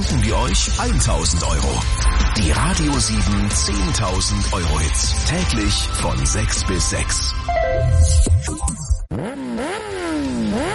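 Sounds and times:
speech: 0:00.3 - 0:10.7
motorcycle engine revving: 0:09.0 - 0:10.7.

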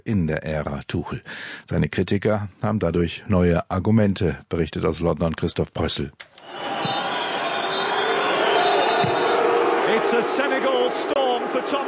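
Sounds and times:
speech: 0:00.0 - 0:07.0, 0:10.0 - 0:11.8
large stadium crowd booing the team: 0:06.4 - 0:11.8.

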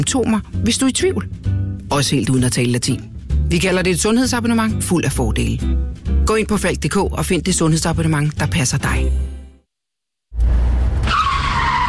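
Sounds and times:
speech: 0:00.0 - 0:09.3
car tires skidding with a high-pitched squeal: 0:10.4 - 0:11.8.

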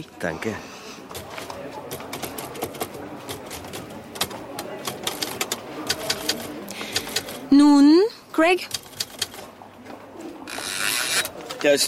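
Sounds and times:
speech: 0:00.0 - 0:00.7, 0:07.6 - 0:08.8, 0:11.6 - 0:11.8
faint room murmur: 0:00.0 - 0:11.8
typewriter keys clacking on a table: 0:01.1 - 0:07.4, 0:08.6 - 0:09.4.

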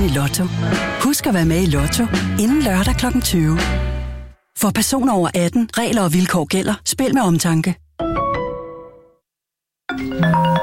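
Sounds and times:
speech: 0:00.0 - 0:03.9, 0:04.6 - 0:07.8
telephone ringing with a bright electronic tone: 0:09.9 - 0:10.6.

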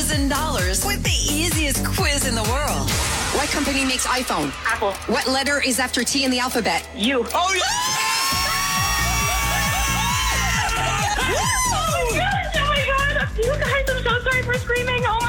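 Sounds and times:
pounding music with a thumping beat: 0:00.0 - 0:15.2
speech: 0:00.1 - 0:08.0
cheering voices: 0:07.4 - 0:12.7
prize winner screaming and whooping excitedly: 0:07.6 - 0:12.3.

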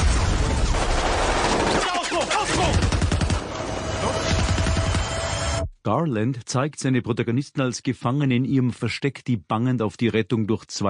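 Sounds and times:
rapid gunfire volleys: 0:00.0 - 0:03.6, 0:04.2 - 0:05.4
speech: 0:05.8 - 0:10.8.

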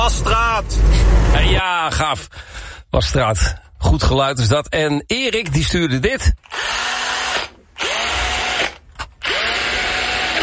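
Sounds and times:
speech: 0:00.1 - 0:06.9
electric screwdriver motor whirring: 0:06.5 - 0:10.4.

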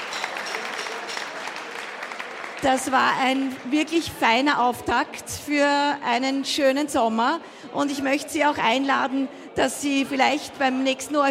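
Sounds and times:
audience applause at a summer festival: 0:00.0 - 0:03.8
speech: 0:02.6 - 0:11.2.

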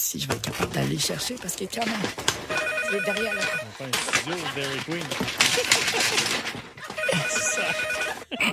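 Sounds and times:
busy room noise: 0:00.0 - 0:08.3
speech: 0:00.1 - 0:08.5
studio telephone ringing with an electronic trill: 0:02.4 - 0:03.9, 0:05.6 - 0:08.3
laughter: 0:04.0 - 0:08.5.

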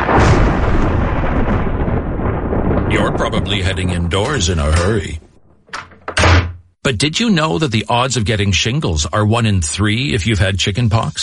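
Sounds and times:
thunder from lightning rumbling: 0:00.0 - 0:06.8
speech: 0:03.2 - 0:05.2, 0:06.9 - 0:11.2.

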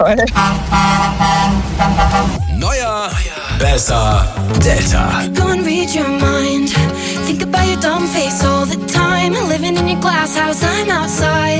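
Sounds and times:
speech: 0:00.0 - 0:11.5
car horn honking: 0:00.3 - 0:02.4.

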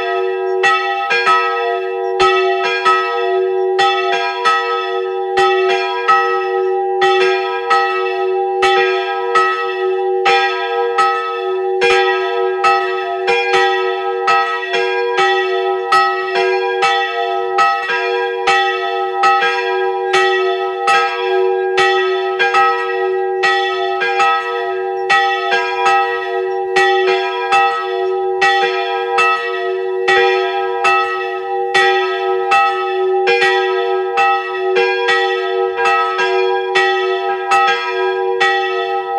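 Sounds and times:
pilgrimage church bells ringing a dense rhythmic peal at noon: 0:00.0 - 0:39.1.

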